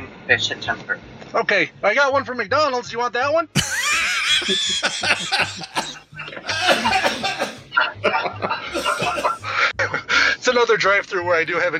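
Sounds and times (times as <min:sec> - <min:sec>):
speech: 0:00.3 - 0:03.8, 0:04.4 - 0:07.3, 0:10.5 - 0:11.7
person in a hard coughing fit: 0:03.6 - 0:07.7, 0:08.7 - 0:09.5
laughter: 0:03.6 - 0:10.3.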